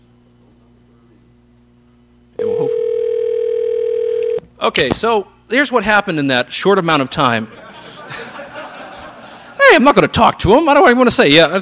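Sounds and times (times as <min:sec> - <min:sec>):
faint hum: 0:00.0 - 0:11.6
telephone dial tone while dialing a number: 0:02.4 - 0:04.4
speech: 0:04.6 - 0:07.6, 0:09.7 - 0:11.6
laughter: 0:07.3 - 0:10.2.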